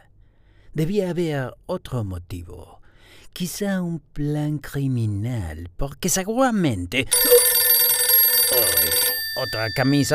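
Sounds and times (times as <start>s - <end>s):
speech: 0.8s - 7.5s, 8.5s - 10.1s
telephone ringing with an electronic trill: 7.1s - 10.1s.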